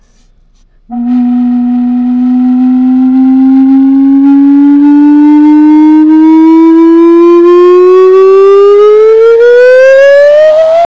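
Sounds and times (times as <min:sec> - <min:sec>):
rising whistle: 0:00.9 - 0:10.9.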